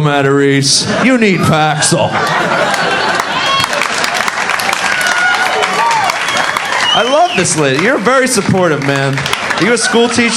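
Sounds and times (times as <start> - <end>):
speech: 0.0 - 3.6, 7.0 - 10.3
crowd noise: 0.0 - 10.3
laughter: 0.7 - 4.6
audience clapping: 2.2 - 10.3.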